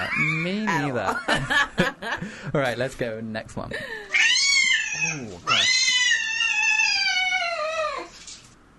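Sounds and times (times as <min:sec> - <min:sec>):
speech: 0:00.2 - 0:04.3, 0:05.0 - 0:05.8
cat yowling: 0:04.1 - 0:08.2.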